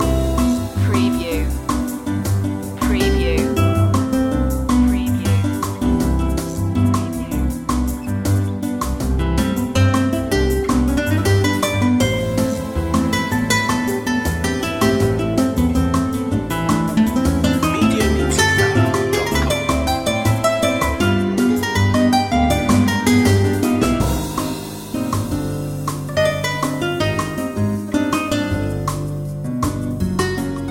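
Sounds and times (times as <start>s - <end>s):
music loop: 0.0s - 30.6s.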